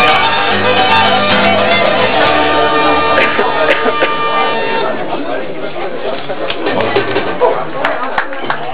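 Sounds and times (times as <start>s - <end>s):
Irish band playing in an Irish pub: 0.0s - 5.4s
laughter: 1.7s - 5.0s, 6.6s - 8.6s.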